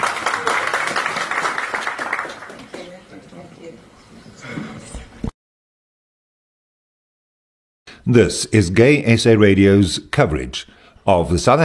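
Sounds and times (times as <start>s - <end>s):
audience applauding panelists at a business summit: 0.0s - 3.0s
voices murmuring: 2.6s - 5.3s
speech: 8.0s - 11.6s.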